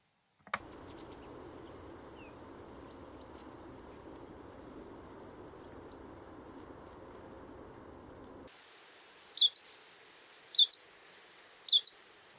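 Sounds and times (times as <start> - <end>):
faint hiss: 0.0 - 12.3
Hume's warbler short high chirruping calls: 0.6 - 8.5, 9.4 - 9.7, 10.5 - 10.9, 11.7 - 12.0.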